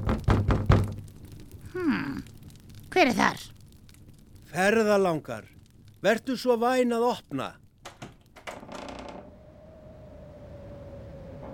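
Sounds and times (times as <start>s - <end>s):
knocking on the door of an old woman's home: 0.0s - 1.0s
speech: 3.0s - 3.5s, 4.5s - 7.6s.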